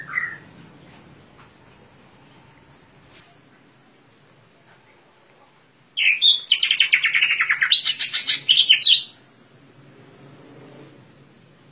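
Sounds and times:
leafbird singing: 0.0s - 0.5s, 6.0s - 9.2s.

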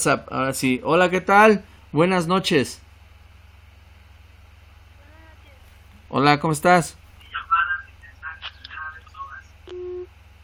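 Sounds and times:
speech: 0.0s - 2.8s, 6.1s - 7.0s
low constant hum: 0.0s - 10.4s
voice on the phone line: 7.2s - 10.1s.

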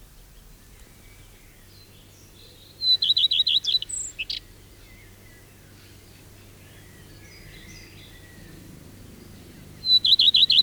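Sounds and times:
Common Redstart song after sunset on a pine heath in Finland: 0.1s - 10.6s.

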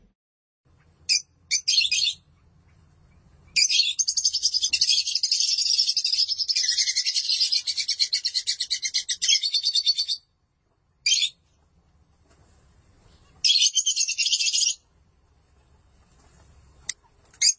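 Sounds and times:
lovebird chatter in harsh rapid pulsed bursts: 0.8s - 10.2s, 13.4s - 14.8s, 16.8s - 17.5s.

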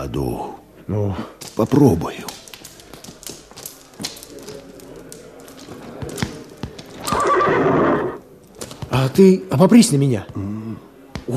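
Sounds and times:
speech: 0.1s - 2.4s, 9.0s - 10.5s
horse hooves clopping on the ground: 1.4s - 9.3s
horse whinnying: 7.0s - 8.2s.

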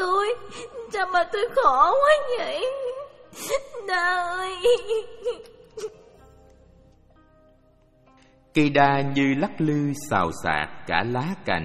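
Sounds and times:
boy crying beside a banyan tree: 0.0s - 6.1s
speech: 0.4s - 6.0s, 8.5s - 11.6s.

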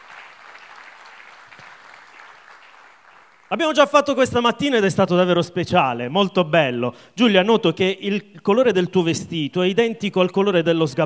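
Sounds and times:
crowd clapping at a Sunday gathering: 0.0s - 3.7s
speech: 3.5s - 11.0s.

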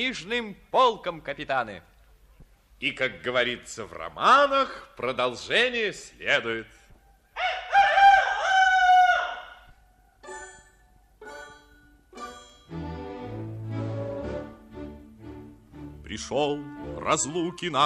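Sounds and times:
speech: 0.0s - 1.9s, 2.8s - 6.8s, 16.1s - 17.8s
rooster crowing: 7.4s - 9.7s.

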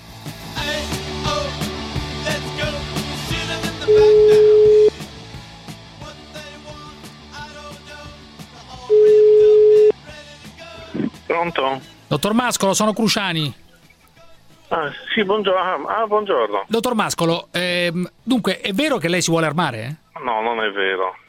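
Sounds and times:
music: 0.0s - 21.2s
speech: 0.2s - 1.0s, 11.4s - 13.6s, 14.7s - 21.2s
outgoing call telephone ringback tone: 3.9s - 4.9s, 8.9s - 9.9s.

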